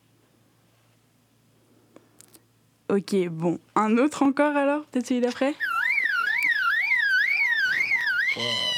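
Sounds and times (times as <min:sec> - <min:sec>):
speech: 0:02.9 - 0:05.7
bird mimicking a car alarm: 0:05.6 - 0:08.7.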